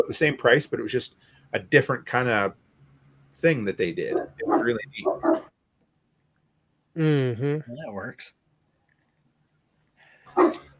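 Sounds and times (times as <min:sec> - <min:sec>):
speech: 0:00.0 - 0:02.6, 0:03.4 - 0:05.5, 0:07.0 - 0:08.4
dog barking: 0:04.1 - 0:05.5, 0:10.3 - 0:10.7.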